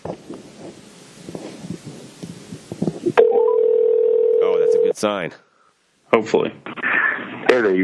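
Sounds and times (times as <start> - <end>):
phone dialing tones and clicks: 3.2 - 4.9
speech: 5.0 - 5.5, 6.1 - 6.7, 7.5 - 7.8.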